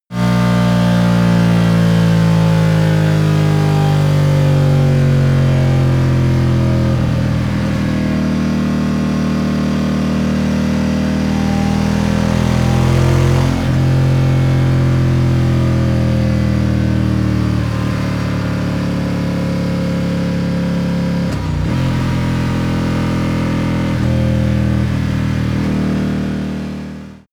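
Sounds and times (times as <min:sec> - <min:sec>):
Ducati cruiser motorcycle decelerating: 0:00.1 - 0:27.3.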